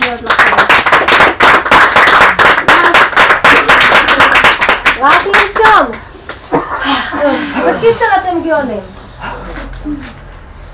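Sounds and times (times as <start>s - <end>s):
group of people applauding: 0.0s - 6.0s
speech: 0.1s - 1.1s, 7.8s - 9.0s.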